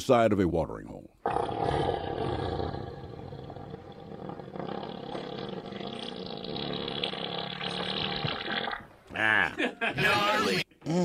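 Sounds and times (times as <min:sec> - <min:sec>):
speech: 0:00.0 - 0:02.4, 0:09.2 - 0:11.0
elephant farting at a watering hole: 0:01.2 - 0:08.9.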